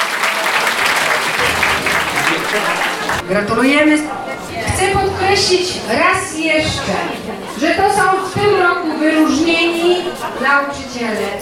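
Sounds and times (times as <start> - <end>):
audience applause at a teachers' awards ceremony in Wielkopolska Poland: 0.0 - 3.2
laughter: 0.0 - 3.2, 5.8 - 10.7
speech: 2.5 - 11.3.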